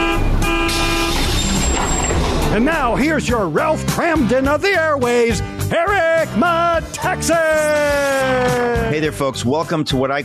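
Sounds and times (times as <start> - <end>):
bus horn tooting as the vehicle passes: 0.0 - 1.6
dense rumble of road traffic: 0.0 - 3.6
speech: 2.6 - 10.2.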